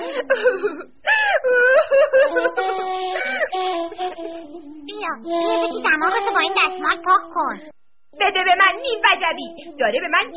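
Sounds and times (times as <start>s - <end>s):
upset mother sobbing and wailing: 0.0s - 7.6s, 8.6s - 10.3s
speech: 0.2s - 10.3s.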